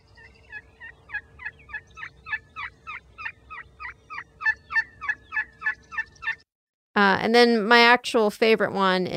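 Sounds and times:
turkey assembly call gathering young turkeys: 0.2 - 6.4
speech: 7.0 - 9.1.

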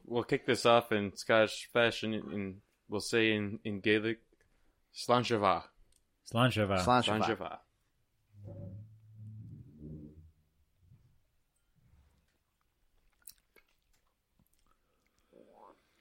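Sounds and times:
speech: 0.1 - 4.3, 4.9 - 5.7, 6.3 - 7.6
wet chewing and smacking mouth noises while tasting whiskey: 12.2 - 15.9
slurping while tasting whiskey: 12.6 - 15.9.

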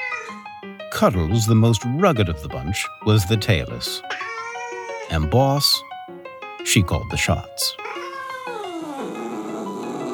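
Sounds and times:
cat meowing: 0.0 - 0.4, 4.1 - 5.2, 7.8 - 10.1
speech: 1.0 - 4.3, 5.1 - 5.9, 6.6 - 8.0.

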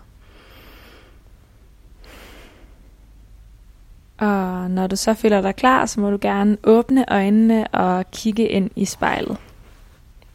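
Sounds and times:
deep breath in and out: 0.0 - 3.3
speech: 4.2 - 9.4.

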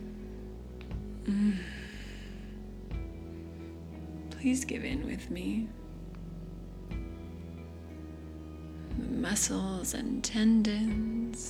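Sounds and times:
faint low hum: 0.0 - 11.4
soft breath through the mouth or nose: 1.2 - 4.0
speech: 1.3 - 1.8, 4.4 - 5.8, 9.3 - 11.4.

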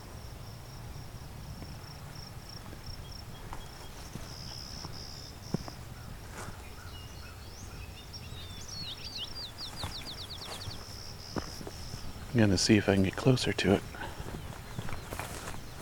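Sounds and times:
bird chirping: 3.0 - 15.8
clay-colored sparrow buzzy song: 3.0 - 15.8
speech: 12.4 - 13.9.

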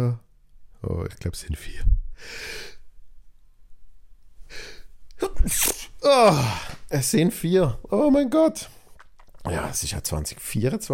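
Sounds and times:
speech: 0.8 - 2.8, 4.5 - 8.8, 9.4 - 10.9
loud sneezes: 5.2 - 6.8.

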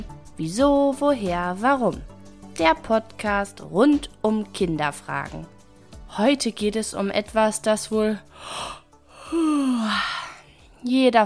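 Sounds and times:
speech: 0.4 - 10.2, 10.8 - 11.2
person yawning: 8.4 - 10.5.

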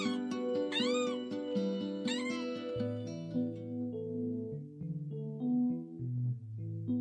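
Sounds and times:
kittens meowing: 0.0 - 3.0
gentle music: 0.0 - 6.9.

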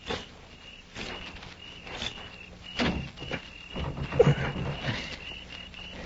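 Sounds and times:
bolted door thumping and rattling as it is pushed and jiggled: 2.8 - 5.1.

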